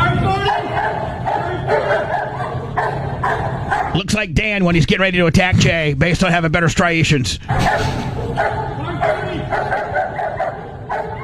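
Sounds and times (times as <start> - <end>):
dog barking in sharp excited yaps: 0.5 - 4.0, 7.5 - 11.2
speech: 4.0 - 8.6.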